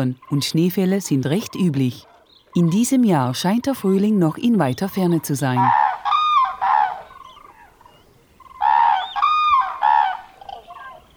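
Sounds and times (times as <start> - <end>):
speech: 0.0 - 5.8
flock of wintering geese honking: 5.6 - 7.7, 8.5 - 11.0.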